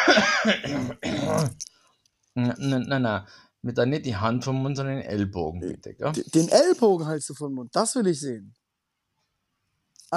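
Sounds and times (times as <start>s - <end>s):
person coughing: 0.0s - 1.6s
speech: 0.2s - 1.7s, 2.4s - 8.6s.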